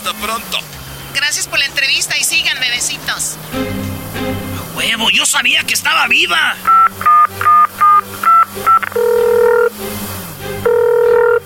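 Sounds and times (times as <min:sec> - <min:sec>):
speech: 0:00.1 - 0:07.0
longer steady electronic tones signalling an incoming phone call: 0:00.7 - 0:11.4
short beeping telephone keypad tones: 0:06.7 - 0:09.7, 0:10.7 - 0:11.4.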